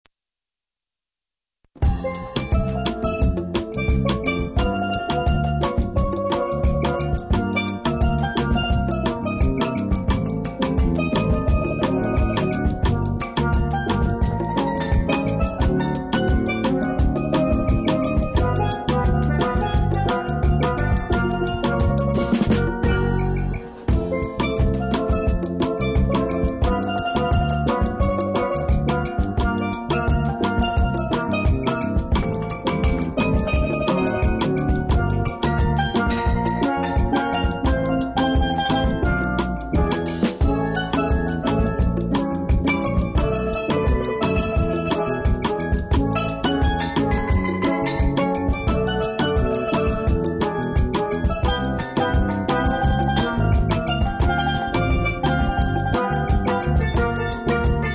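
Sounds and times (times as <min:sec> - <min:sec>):
acoustic Caribbean steel drum band playing: 0:01.8 - 0:57.9.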